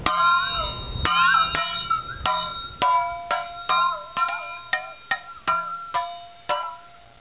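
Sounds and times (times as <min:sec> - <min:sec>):
Meinl liquid triangle: 0:00.0 - 0:07.1.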